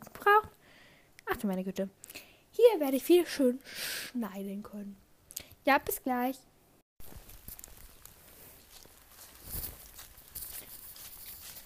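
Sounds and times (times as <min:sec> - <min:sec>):
speech: 0:01.4 - 0:05.0, 0:05.6 - 0:06.5
constant soft hiss of open air: 0:01.9 - 0:11.6
footsteps crunching across a meadow in the rain: 0:07.0 - 0:11.6.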